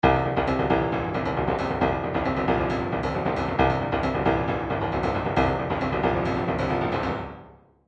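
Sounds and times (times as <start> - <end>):
filtered trance MIDI bass loop: 0.0 - 7.1.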